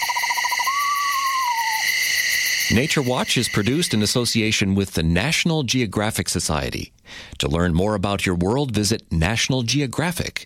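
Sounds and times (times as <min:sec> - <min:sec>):
pair of screech owls calling with undulating trill: 0:00.0 - 0:04.0
steady high chorus of insects: 0:00.0 - 0:04.5
speech: 0:02.7 - 0:10.4.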